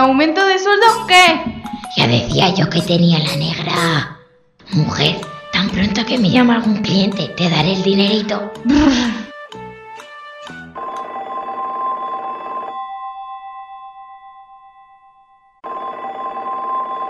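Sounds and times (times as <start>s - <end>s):
speech: 0.0s - 9.2s
old-style telephone bell ringing: 10.8s - 17.0s.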